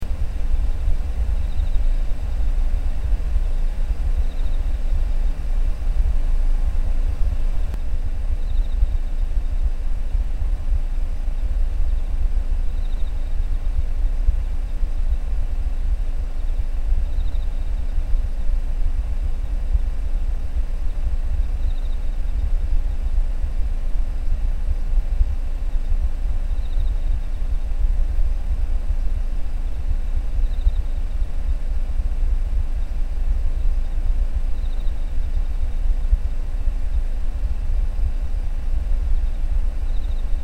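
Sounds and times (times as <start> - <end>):
insects chirping outside heard from inside a car: 0.0 - 40.4.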